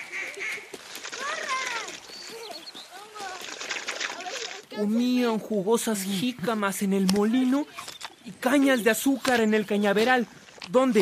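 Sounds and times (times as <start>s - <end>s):
ducks quacking on a lagoon: 0.0s - 3.2s
speech: 4.8s - 11.0s.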